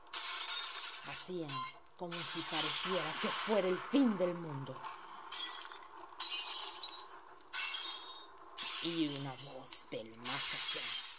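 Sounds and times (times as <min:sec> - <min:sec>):
glass windows of a house shattering: 0:00.0 - 0:03.4, 0:05.2 - 0:11.1
speech: 0:01.0 - 0:05.0, 0:08.8 - 0:11.0
tinkling spray of falling glass shards: 0:05.3 - 0:09.7, 0:10.3 - 0:11.1.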